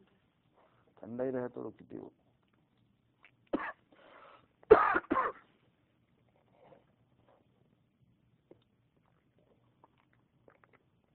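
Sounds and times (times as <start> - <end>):
speech: 1.0 - 2.2
person coughing harshly: 3.5 - 3.8, 4.7 - 5.5.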